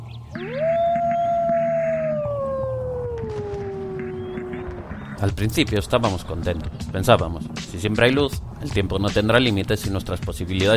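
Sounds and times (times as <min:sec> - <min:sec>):
lone long howl: 0:00.4 - 0:05.0
speech: 0:05.2 - 0:10.7.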